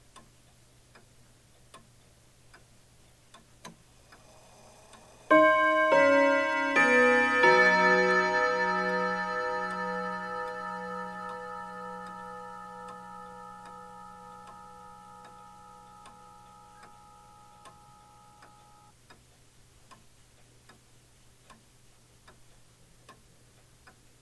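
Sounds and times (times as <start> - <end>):
bell arpeggio: 5.3 - 18.1.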